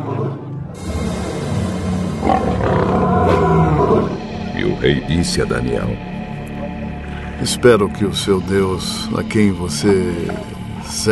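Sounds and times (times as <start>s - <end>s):
lions roaring: 0.0s - 4.8s, 9.7s - 11.1s
speech: 4.8s - 6.2s, 7.4s - 11.1s.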